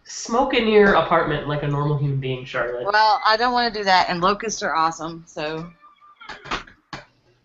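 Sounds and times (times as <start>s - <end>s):
speech: 0.1s - 6.6s
door creaking with a drawn-out squeal: 5.7s - 6.9s.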